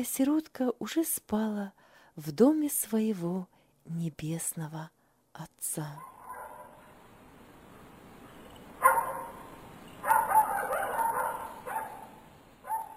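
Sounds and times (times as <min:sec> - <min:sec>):
speech: 0:00.0 - 0:06.1
dog barking loudly: 0:06.0 - 0:06.9, 0:08.8 - 0:12.9.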